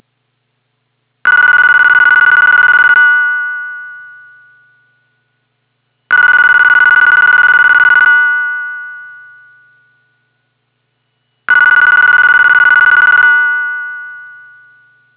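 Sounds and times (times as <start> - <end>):
phone ringing: 1.2 - 5.1, 6.1 - 10.3, 11.5 - 15.1.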